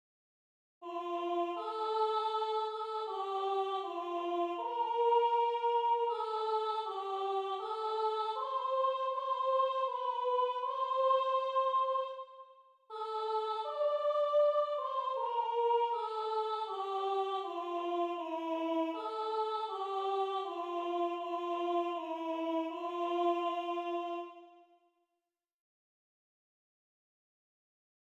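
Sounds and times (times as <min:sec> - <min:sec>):
soprano singing a hymn: 0:00.8 - 0:12.3, 0:12.9 - 0:24.5.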